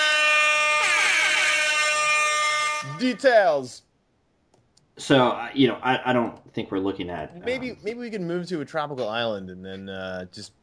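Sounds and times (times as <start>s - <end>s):
loud blaring air horn: 0.0s - 3.2s
speech: 3.0s - 3.9s, 5.0s - 10.6s.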